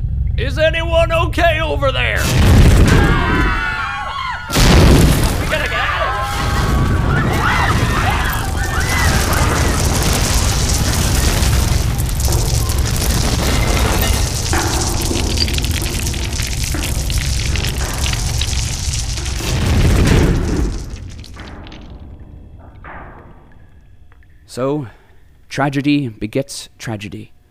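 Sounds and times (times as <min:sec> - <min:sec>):
speech: 0:00.4 - 0:02.6, 0:24.6 - 0:27.4
heavy boom of a collapsing tunnel: 0:02.2 - 0:03.4, 0:04.5 - 0:24.0
rumble of crashing debris in a collapsing tunnel: 0:02.2 - 0:24.4.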